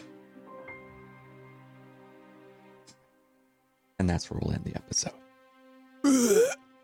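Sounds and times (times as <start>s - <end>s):
speech: 4.1s - 5.2s
person acting out choking and gagging: 6.1s - 6.6s.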